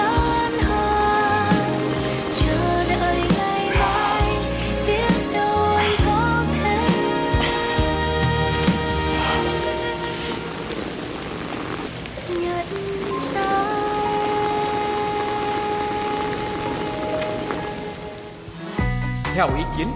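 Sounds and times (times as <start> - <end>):
rain pattering on a hard surface: 0.0 - 18.5
speech: 19.4 - 19.9.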